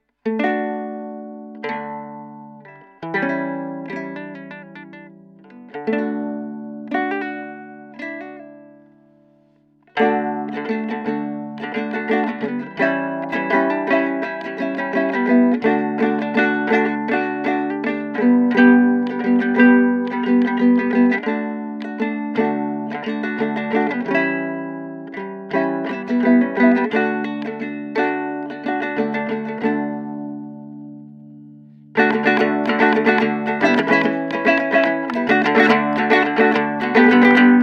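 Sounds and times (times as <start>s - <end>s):
solo ukulele playing: 0.0s - 37.6s.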